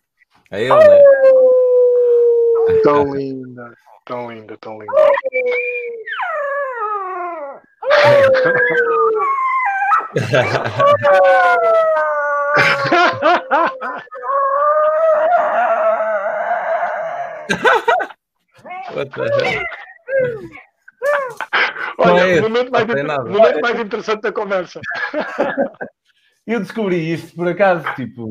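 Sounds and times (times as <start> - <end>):
speech: 0.5 - 1.3, 2.8 - 6.0, 8.0 - 9.4, 10.1 - 15.4, 17.5 - 20.6, 21.3 - 28.2
female dog howling with yips and whimpering: 0.7 - 3.2, 4.9 - 17.5
laughter: 7.9 - 9.3, 10.1 - 14.3, 17.5 - 18.2, 18.9 - 19.9, 24.8 - 26.0.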